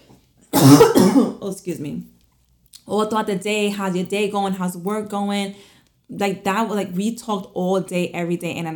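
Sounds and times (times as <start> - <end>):
person coughing: 0.5 - 1.4
throat clearing: 0.6 - 1.4
speech: 0.6 - 2.2, 2.9 - 8.7.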